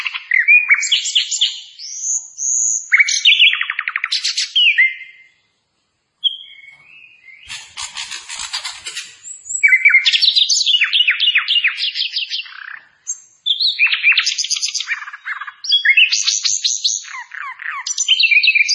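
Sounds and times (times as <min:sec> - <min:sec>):
Hill blue flycatcher song with trills and whistled phrases: 0:00.0 - 0:05.5, 0:06.2 - 0:18.7.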